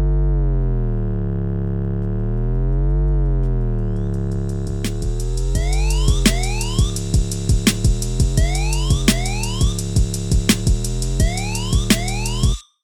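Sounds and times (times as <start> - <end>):
slow deep sliding bass line: 0.0 - 12.6
heavy hip-hop beat: 2.7 - 12.6
punchy drums: 3.2 - 12.6
wailing wavering siren tone in a hip-hop track: 5.6 - 7.1, 8.4 - 9.8, 11.2 - 12.6.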